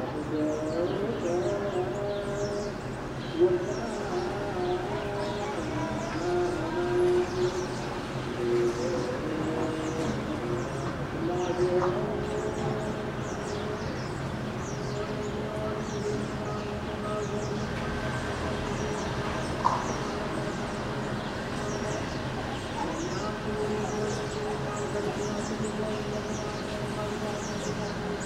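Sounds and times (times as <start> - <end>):
birds chirping: 0.0 - 28.2
chanting voices from Orthodox church daily mass: 0.0 - 28.2
traffic hum: 0.0 - 28.2.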